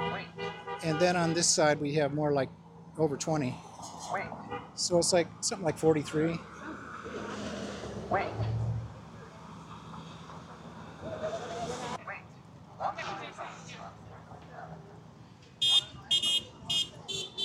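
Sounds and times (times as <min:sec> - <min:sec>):
car horn honking at a street-corner demonstration: 0:00.0 - 0:01.4, 0:04.4 - 0:04.8, 0:15.6 - 0:17.4
passing street traffic: 0:00.0 - 0:17.4
speech: 0:00.8 - 0:06.6, 0:08.1 - 0:08.5.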